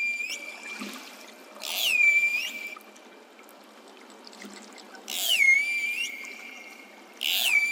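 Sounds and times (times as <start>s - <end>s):
pilot whale calls recorded underwater: 0.0s - 0.9s, 1.6s - 2.9s, 5.1s - 7.7s.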